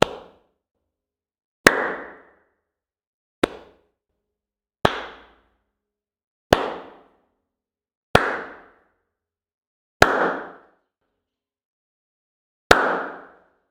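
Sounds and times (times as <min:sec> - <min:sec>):
human hands clapping: 0:01.7 - 0:02.3, 0:03.4 - 0:03.8, 0:04.8 - 0:05.4, 0:06.5 - 0:07.1, 0:08.2 - 0:08.8, 0:10.0 - 0:10.7, 0:12.7 - 0:13.4.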